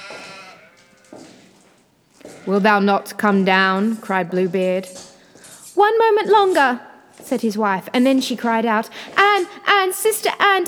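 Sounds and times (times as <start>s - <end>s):
sheep bleating: 0.0s - 1.4s
speech: 2.4s - 5.0s, 5.8s - 10.6s.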